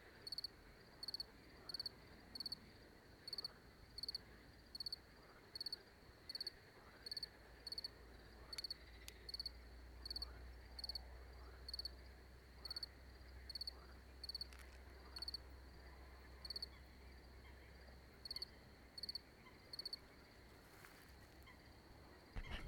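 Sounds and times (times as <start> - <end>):
cricket chirping: 0.2 - 22.6
low steady hum: 22.4 - 22.6.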